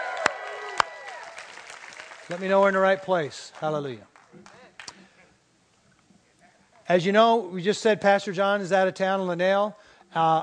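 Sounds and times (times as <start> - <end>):
church audience shouting and cheering: 0.0 - 2.5
sharp distinct hand claps: 0.0 - 2.8, 3.4 - 5.1
speech: 2.3 - 4.6, 6.9 - 10.4.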